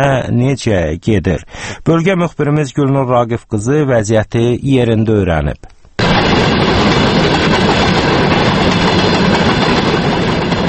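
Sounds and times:
speech: 0.0s - 5.7s
freight train hauling oil tank cars in Aghstafa district, Azerbaijan: 6.0s - 10.6s.

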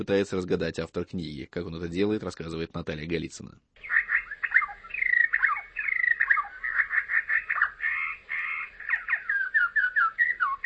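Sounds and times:
speech: 0.0s - 4.0s
bird singing a varied warbling song: 3.8s - 10.6s.

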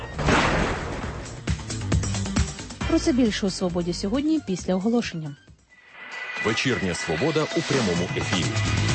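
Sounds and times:
heavy explosive boom: 0.2s - 1.4s
sharp thud: 0.2s - 1.4s
speech: 3.0s - 5.5s, 6.4s - 8.8s.

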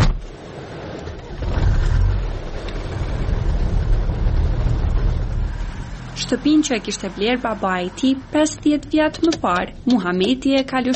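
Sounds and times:
old red car driving with engine rumbling: 0.0s - 10.9s
speech: 6.3s - 10.9s.

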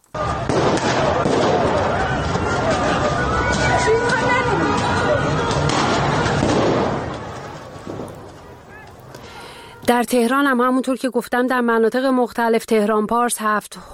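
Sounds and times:
dense protest crowd shouting outdoors: 0.1s - 9.9s
people running: 0.1s - 9.9s
gunshots and tear gas launches at a protest: 0.2s - 8.2s
speech: 10.0s - 13.9s.

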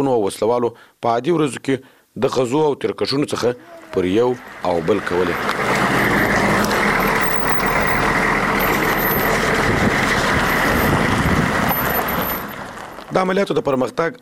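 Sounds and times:
speech: 0.0s - 5.8s, 13.2s - 14.2s
private car driving along an unpaved road toward a front line: 3.6s - 13.8s.

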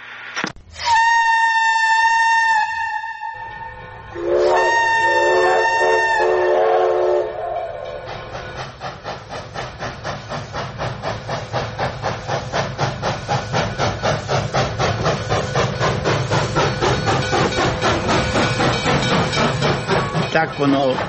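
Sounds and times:
railway conductor's small signal horn blasts: 0.8s - 7.8s
steam train chugging: 0.8s - 21.0s
speech: 20.6s - 21.0s.

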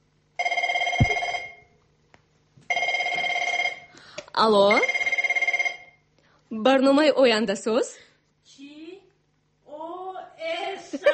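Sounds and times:
telephone ringing with rapid bell trilling: 0.4s - 1.6s, 2.7s - 3.9s, 4.8s - 6.0s
speech: 4.4s - 5.0s, 6.6s - 8.1s.

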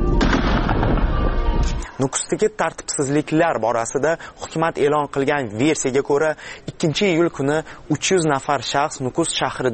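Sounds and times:
warning shots fired into the air by soldiers during street unrest: 0.2s - 1.3s
speech: 2.0s - 9.7s.

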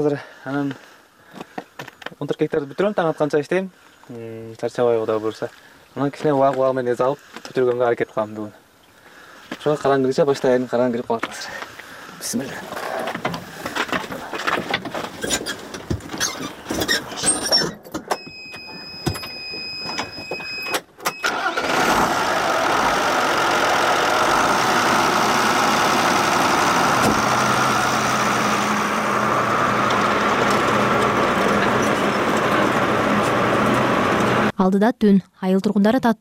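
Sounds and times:
speech: 0.0s - 1.5s, 2.2s - 8.6s, 9.5s - 12.9s, 34.7s - 36.1s
tractor engine starting and idling in a grain field at nightfall: 12.5s - 34.5s.

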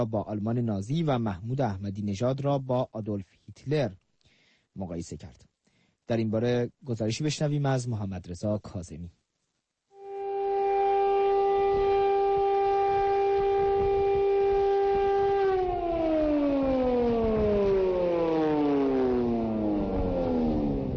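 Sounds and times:
speech: 0.0s - 4.0s, 4.8s - 5.5s, 6.1s - 9.2s
Holocaust memorial civil defense siren wailing: 10.0s - 20.9s.

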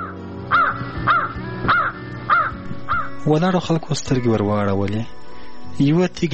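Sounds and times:
crow cawing: 0.0s - 3.2s
speech: 3.2s - 6.3s.

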